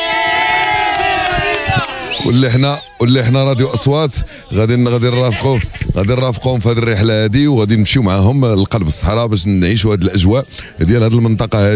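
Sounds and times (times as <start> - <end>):
group of Moroccan visitors applauding: 0.0 - 3.8
group of Moroccan visitors on a desert trip cheering and whooping: 0.0 - 4.1
laughter: 2.0 - 7.0
speech: 2.2 - 11.7.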